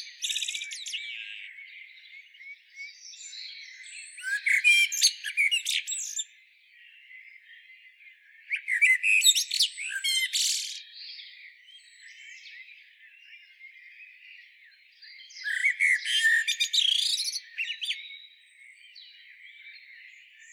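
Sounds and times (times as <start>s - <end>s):
common blackbird Turdus merula singing: 0.0s - 20.5s.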